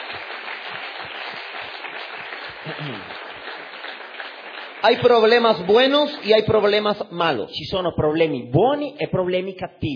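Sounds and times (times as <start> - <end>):
audience applauding: 0.0 - 7.0
faint voice murmuring: 2.6 - 3.2
speech: 2.7 - 3.2, 4.8 - 9.9.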